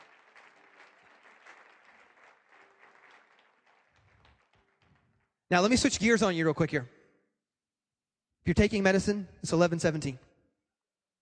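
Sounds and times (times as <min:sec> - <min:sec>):
audience clapping hands: 0:00.0 - 0:05.8
speech: 0:05.5 - 0:07.0, 0:08.4 - 0:10.3.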